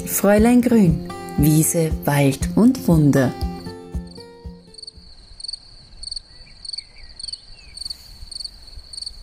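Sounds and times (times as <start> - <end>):
speech: 0.1 - 3.5
birds chirping in a small wood: 3.3 - 9.2.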